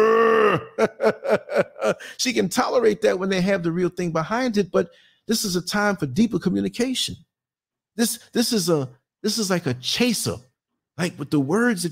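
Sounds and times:
man imitating a cow mooing: 0:00.0 - 0:00.8
laughter: 0:00.8 - 0:02.0
speech: 0:00.8 - 0:07.3, 0:08.0 - 0:11.8.

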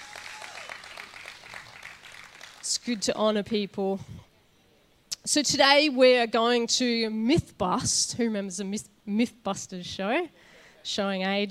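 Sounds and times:
crowd applauding: 0:00.0 - 0:02.8
speech: 0:02.8 - 0:04.3, 0:05.3 - 0:11.4.

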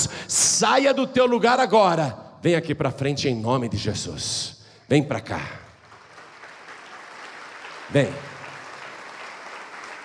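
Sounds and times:
speech: 0:00.0 - 0:05.6, 0:07.9 - 0:08.3
large church audience applauding: 0:05.8 - 0:10.0.

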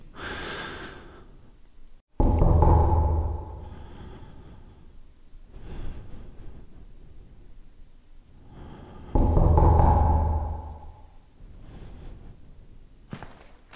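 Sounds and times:
person breathing heavily after knocking on a door: 0:00.0 - 0:01.6, 0:03.1 - 0:07.7, 0:08.3 - 0:12.8.

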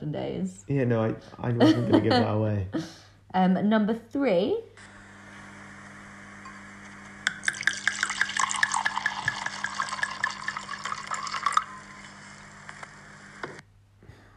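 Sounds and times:
speech: 0:00.1 - 0:04.9
laughter: 0:01.4 - 0:02.6
wine glugging and pouring into a bowl: 0:07.2 - 0:12.2.

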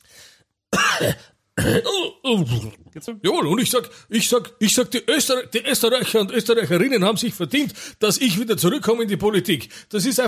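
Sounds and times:
person clearing throat: 0:00.7 - 0:02.9
person coughing: 0:00.7 - 0:02.9
speech: 0:01.0 - 0:10.2.

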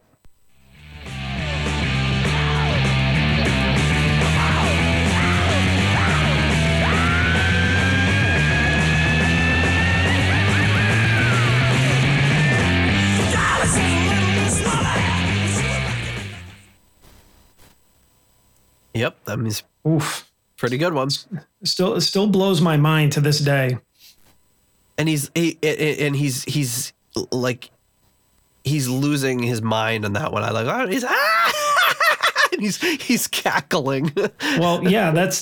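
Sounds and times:
loud distorted rock band music: 0:00.0 - 0:17.8
rock singer's high-pitched scream on record: 0:01.0 - 0:16.4
speech: 0:19.3 - 0:23.9, 0:25.0 - 0:27.8, 0:28.6 - 0:31.7, 0:32.6 - 0:35.4
laughter: 0:31.0 - 0:35.4.

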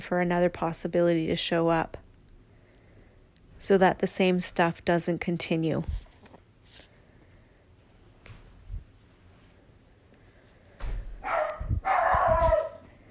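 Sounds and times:
speech: 0:00.0 - 0:02.0, 0:03.6 - 0:06.0
dog barking: 0:11.2 - 0:12.9.

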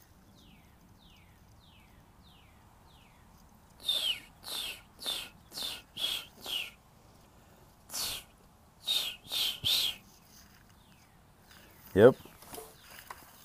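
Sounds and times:
bird giving harsh raspy calls: 0:03.8 - 0:06.8, 0:07.9 - 0:10.1
speech: 0:12.0 - 0:12.2.

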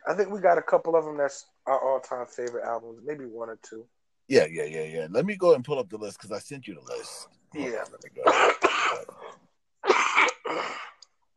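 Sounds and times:
speech: 0:00.1 - 0:09.4
person coughing hard from smoking weed: 0:08.2 - 0:11.0.

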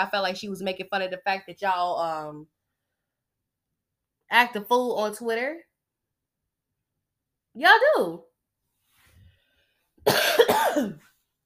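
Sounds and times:
speech: 0:00.0 - 0:02.6, 0:04.3 - 0:05.7, 0:07.6 - 0:08.3, 0:10.0 - 0:11.1
harsh strained raspy cough from a person with a sore throat: 0:10.0 - 0:11.1.

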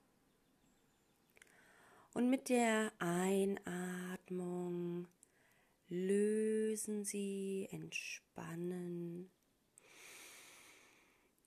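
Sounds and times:
speech: 0:02.1 - 0:05.2, 0:05.9 - 0:09.4
long steady exhale during a guided breathing exercise: 0:09.8 - 0:11.2.

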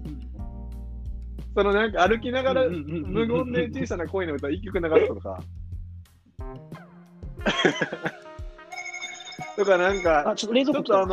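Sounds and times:
speech: 0:01.6 - 0:05.6, 0:07.4 - 0:08.2, 0:09.6 - 0:11.1
people laughing: 0:02.3 - 0:04.2, 0:04.8 - 0:05.2, 0:07.4 - 0:08.4
electronic doorbell chiming for a delivery: 0:08.7 - 0:10.3.

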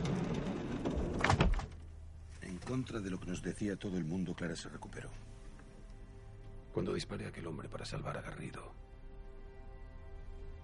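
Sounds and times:
door pushed shut with a rumbling slide and soft thud: 0:00.0 - 0:01.8
speech: 0:02.7 - 0:05.4, 0:06.8 - 0:08.8.

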